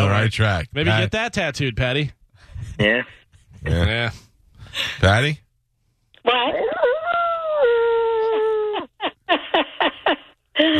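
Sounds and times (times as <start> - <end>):
speech: 0.2 - 5.4, 6.2 - 7.0, 10.6 - 10.7
dog howling: 6.6 - 8.7.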